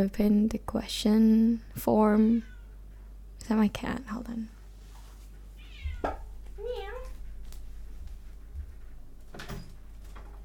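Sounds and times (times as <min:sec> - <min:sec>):
speech: 0:00.0 - 0:02.5, 0:03.4 - 0:04.6, 0:06.0 - 0:06.2
low electrical hum: 0:00.0 - 0:10.4
cat meowing: 0:05.6 - 0:07.1
soft knock or clunk: 0:05.9 - 0:06.3.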